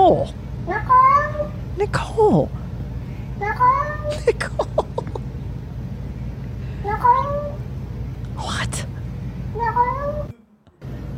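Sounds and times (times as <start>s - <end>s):
steady hum: 0.0s - 11.1s
speech: 0.1s - 0.9s, 1.8s - 2.6s, 3.6s - 4.6s
drawn-out cat meow with speech-like inflection: 0.7s - 1.6s, 3.4s - 4.1s, 6.8s - 7.6s, 9.6s - 10.3s
laughter: 4.1s - 5.4s.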